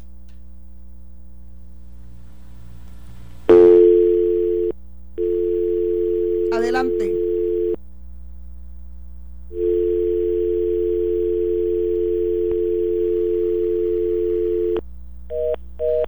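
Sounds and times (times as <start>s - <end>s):
telephone dial tone on an open line: 3.5s - 7.8s, 9.6s - 14.8s
speech: 6.7s - 7.2s.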